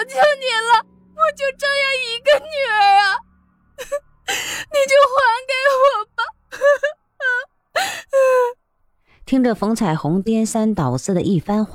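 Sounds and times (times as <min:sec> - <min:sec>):
speech: 0:00.0 - 0:03.2, 0:03.8 - 0:06.9, 0:09.3 - 0:11.7
woman crying and wailing: 0:00.0 - 0:03.2, 0:03.8 - 0:08.6.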